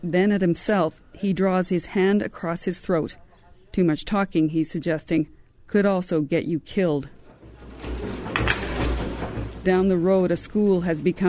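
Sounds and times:
speech: 0.0 - 7.2, 9.6 - 11.2
dishes clinking as a woman washes them in a school kitchen: 7.2 - 9.8.

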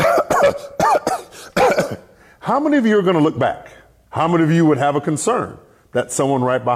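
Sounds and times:
person coughing: 0.0 - 2.2
speech: 2.5 - 6.7.

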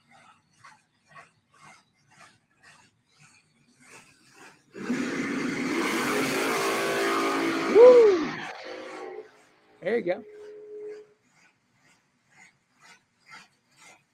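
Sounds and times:
drag race car engine doing a burnout: 4.8 - 11.0
speech: 9.9 - 10.4.

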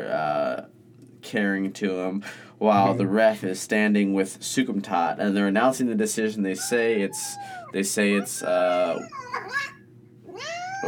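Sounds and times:
speech: 1.3 - 9.7
cat meowing: 6.6 - 10.8.

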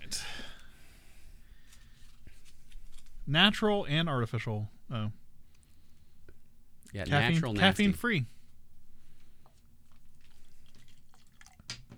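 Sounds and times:
low steady hum: 0.0 - 11.9
speech: 3.3 - 5.2, 6.9 - 8.4
drink poured into a glass: 10.7 - 11.9.

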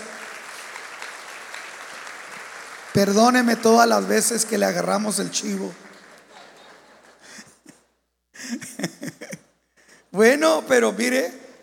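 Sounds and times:
crowd clapping: 0.0 - 7.6
speech: 3.0 - 5.9, 10.2 - 11.6
laughter: 6.1 - 9.5.

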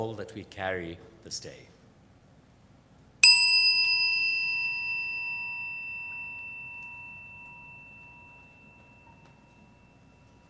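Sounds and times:
speech: 0.0 - 1.8
low hum: 0.0 - 10.4
meditation chime ringing: 3.2 - 10.4.

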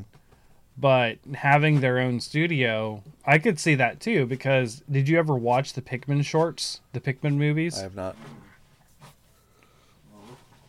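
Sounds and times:
speech: 0.8 - 8.4
dog whining and growling: 8.0 - 8.6.

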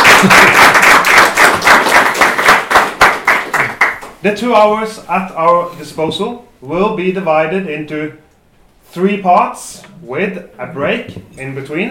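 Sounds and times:
audience applauding for panelists before a panel discussion: 0.0 - 4.2
speech: 4.2 - 8.2, 8.9 - 11.8.

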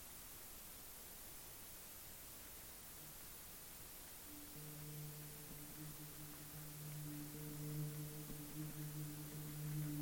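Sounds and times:
steady dense filtered hiss: 0.0 - 10.0
low feedback hum with stacked tones: 2.9 - 10.0.

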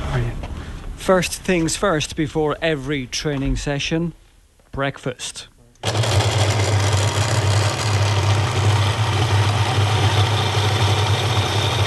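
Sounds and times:
speech: 0.2 - 4.2, 4.8 - 6.1
kitchen blender running at full speed: 5.8 - 11.8.

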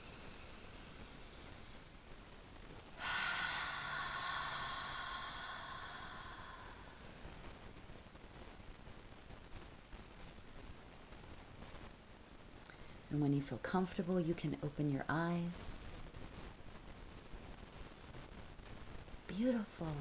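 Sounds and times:
deep breath in through the nose: 0.0 - 1.9, 3.0 - 7.3
faint steady hiss: 0.0 - 19.9
speech: 13.1 - 15.8, 19.4 - 19.9.

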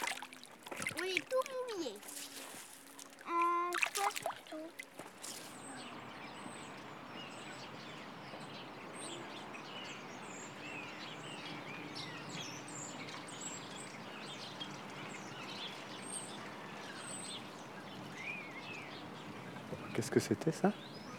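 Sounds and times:
speech: 1.0 - 2.2, 4.0 - 5.4, 20.0 - 20.9
large flock of starlings chirping before migration: 4.5 - 21.1.

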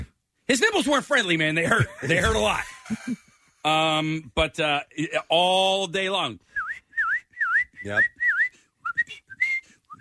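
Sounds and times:
speech: 0.5 - 6.6, 7.8 - 8.2
laughter: 1.6 - 3.6
person whistling chirpy notes imitating a pet cockatiel: 6.5 - 9.9.

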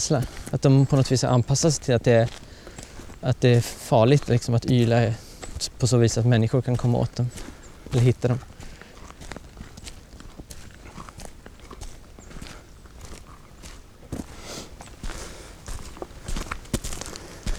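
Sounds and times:
speech: 0.0 - 2.5, 3.2 - 8.5
footsteps on a gravel forest road beside a clear-cut: 0.0 - 17.5.

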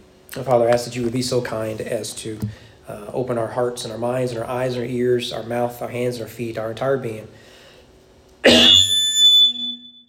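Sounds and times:
speech: 0.4 - 7.4
person coughing during prayer: 8.4 - 8.9.

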